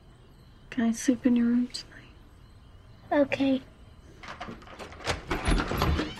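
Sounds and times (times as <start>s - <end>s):
speech: 0.8s - 1.9s, 3.1s - 4.6s
door opening with a rough scraping slide: 4.2s - 6.1s.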